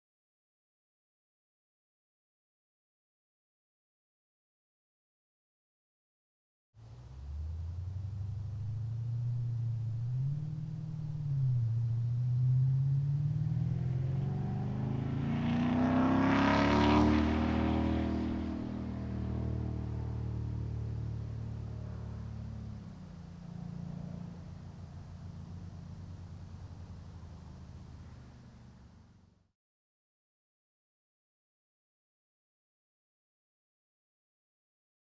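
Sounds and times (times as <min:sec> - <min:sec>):
Jeep SRT8 driving past fast: 0:06.8 - 0:29.4.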